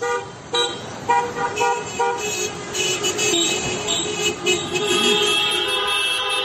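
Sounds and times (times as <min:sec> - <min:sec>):
many car horns honking during a street protest caravan: 0:00.0 - 0:06.4
rumble of street traffic: 0:00.0 - 0:06.4.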